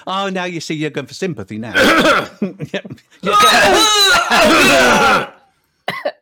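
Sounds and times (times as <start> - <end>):
speech: 0.0 - 5.4
person coughing: 1.8 - 2.5, 3.5 - 6.2.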